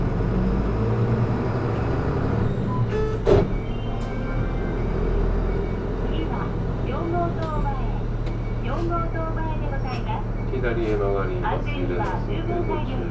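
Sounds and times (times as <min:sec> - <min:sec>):
bus engine pulling away from stop and accelerating: 0:00.0 - 0:13.0
sharp clunk: 0:03.2 - 0:04.2.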